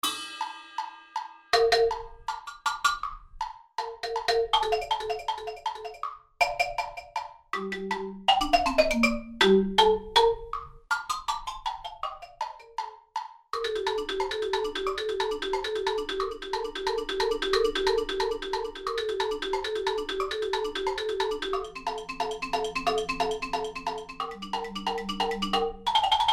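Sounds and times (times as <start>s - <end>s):
mallet percussion etude: 0.0s - 26.3s.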